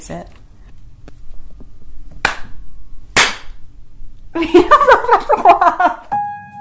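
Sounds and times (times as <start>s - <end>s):
speech: 0.1s - 0.4s, 4.4s - 6.1s
sharp hand claps for syncing recording: 2.2s - 2.5s
laughter: 4.4s - 6.0s.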